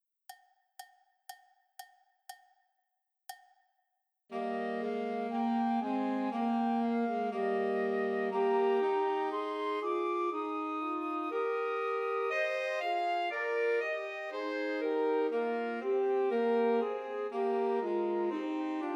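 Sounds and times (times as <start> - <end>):
Christmas trio for flute, alto sax and tenor sax: 4.3 - 18.9.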